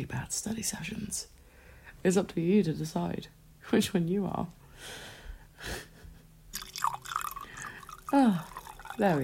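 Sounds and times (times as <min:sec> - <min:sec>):
speech: 0:00.0 - 0:01.4, 0:02.0 - 0:05.9, 0:08.1 - 0:09.2
whiskey pouring into a glass over ice: 0:06.5 - 0:09.2.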